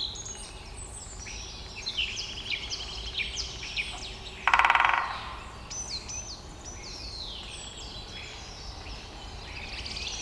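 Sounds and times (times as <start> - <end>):
whistled songbird calls: 0.0 - 10.2
woodpecker drumming: 4.4 - 5.7.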